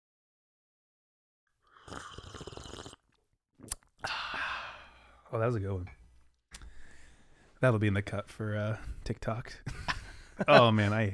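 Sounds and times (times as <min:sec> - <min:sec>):
loud slurping sip of tea: 0:01.6 - 0:03.9
speech: 0:05.3 - 0:06.0, 0:07.6 - 0:11.1.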